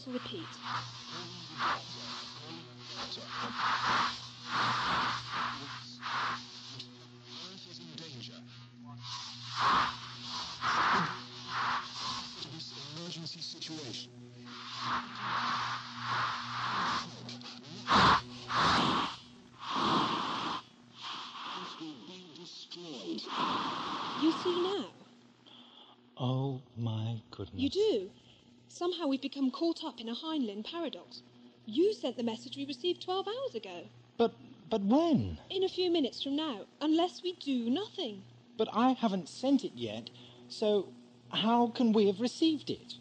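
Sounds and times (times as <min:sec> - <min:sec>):
speech: 0:00.0 - 0:06.9, 0:13.2 - 0:15.4, 0:27.4 - 0:42.9
warbling distorted background: 0:00.0 - 0:13.2, 0:13.8 - 0:22.0
steady low hum: 0:00.0 - 0:22.0
harsh radio static hissing and crackling: 0:00.0 - 0:25.0.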